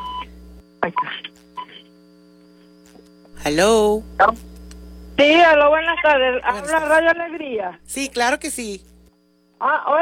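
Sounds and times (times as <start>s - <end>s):
steady buzzing tone on a telephone line: 0.0s - 10.0s
speech: 3.4s - 4.5s, 5.2s - 8.9s, 9.6s - 10.0s.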